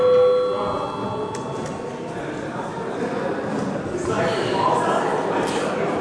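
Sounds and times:
session bell ringing in parliament hall: 0.0s - 1.6s
murmur of indistinct voices in a large busy hall: 0.0s - 5.9s.

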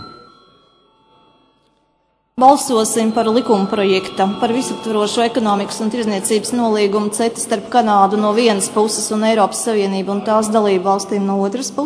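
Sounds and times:
electric bell rung to call a parliamentary vote: 0.0s - 11.3s
speech: 2.4s - 11.8s.

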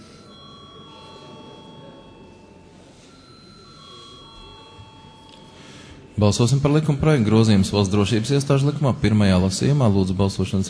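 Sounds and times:
parliamentary voting electric call bell ringing: 0.0s - 6.1s
murmur of chatter and movement in a large hall: 0.0s - 10.6s
speech: 6.2s - 10.6s.

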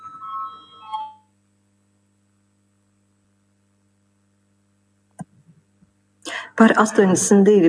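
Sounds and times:
bright electronic parliament voting bell ringing: 0.0s - 1.3s
steady low hum: 0.0s - 7.6s
speech: 6.6s - 7.6s.

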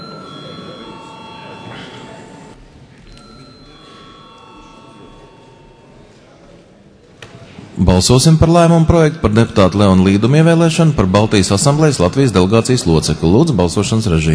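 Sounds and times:
parliament chamber electric bell ringing before a vote: 0.0s - 6.4s
faint murmur of a parliament chamber: 0.0s - 14.3s
speech: 7.8s - 14.3s.

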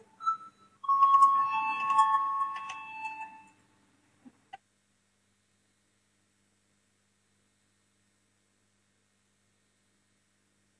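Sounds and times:
parliament voting bell ringing: 0.0s - 3.5s
brief high chime: 0.0s - 3.6s.

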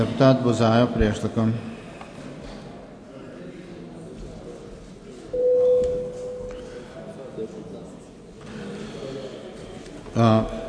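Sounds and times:
speech: 0.0s - 1.7s, 10.2s - 10.6s
electronic parliament voting bell signal tone: 5.3s - 6.6s.

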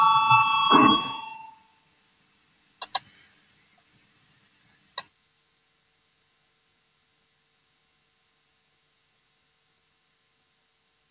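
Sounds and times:
electric voting bell ringing in a parliament chamber: 0.0s - 1.6s
sharp isolated clicks: 2.8s - 3.0s.

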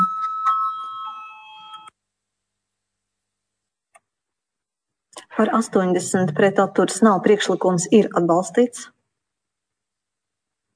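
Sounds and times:
voting bell ringing in a parliament chamber: 0.0s - 1.9s
speech: 5.4s - 9.0s.

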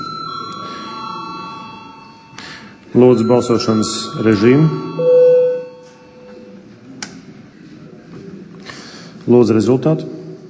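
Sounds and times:
parliament voting electric bell ringing: 0.0s - 6.6s
faint murmur of room noise in a large hall: 0.0s - 10.4s
speech: 3.0s - 5.0s, 9.3s - 10.2s.

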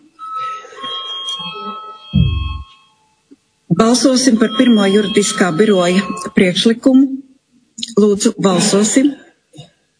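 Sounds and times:
faint noise: 0.0s - 9.9s
electric bell ringing to call a vote in a parliamentary session: 0.2s - 3.2s, 4.0s - 6.6s
speech: 3.8s - 7.2s, 7.8s - 9.2s.

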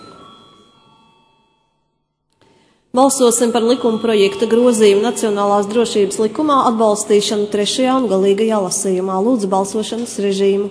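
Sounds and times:
electric bell ringing in a parliament chamber to call a vote: 0.0s - 2.2s, 3.0s - 6.8s
speech: 2.9s - 10.6s.

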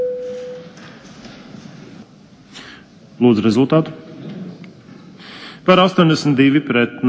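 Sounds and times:
electronic voting bell signal tone of parliament: 0.0s - 0.7s
speech: 3.2s - 4.0s, 5.6s - 7.0s.

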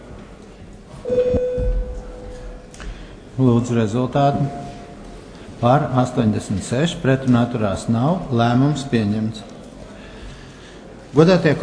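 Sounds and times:
low room rumble in a parliament chamber: 1.0s - 5.8s
electronic bell rung to call a parliamentary vote: 1.1s - 2.3s
speech: 3.4s - 4.6s, 5.6s - 9.5s, 11.1s - 11.6s.

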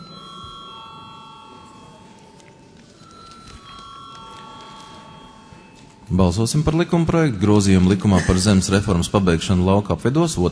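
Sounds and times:
parliamentary bell rung to call a vote: 0.0s - 8.1s
speech: 6.1s - 10.5s.

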